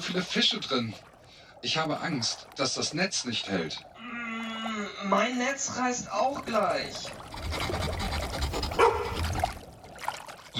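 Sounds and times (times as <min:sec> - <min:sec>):
speech: 0:00.0 - 0:03.9, 0:04.7 - 0:08.0
water washing: 0:00.0 - 0:10.5
dog barking on board a fishing boat: 0:08.8 - 0:09.2.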